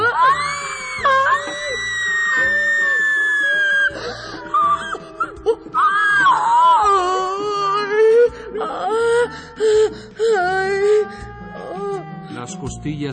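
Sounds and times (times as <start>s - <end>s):
high wavering voices wailing and crying out together: 0.0s - 12.8s.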